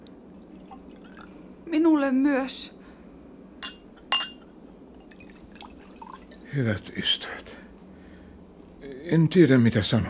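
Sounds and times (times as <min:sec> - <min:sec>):
speech: 0:01.7 - 0:02.8, 0:06.6 - 0:07.6, 0:08.8 - 0:10.0
drinking glasses clinking in a toast: 0:03.6 - 0:06.2.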